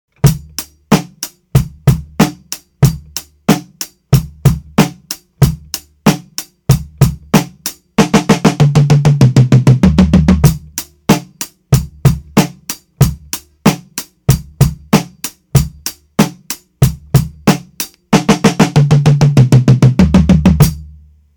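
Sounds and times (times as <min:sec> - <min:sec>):
fast drum beat with fill: 0:00.2 - 0:21.0.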